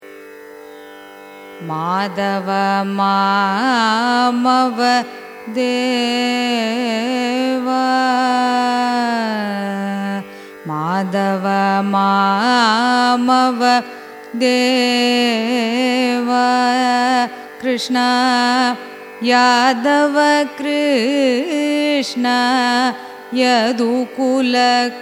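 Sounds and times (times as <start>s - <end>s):
carnatic raga music: 0.0s - 25.0s.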